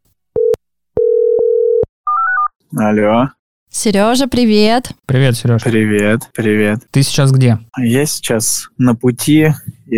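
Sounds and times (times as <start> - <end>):
telephone ringback tone while a call is placed: 0.4 - 2.5
speech: 2.8 - 9.9.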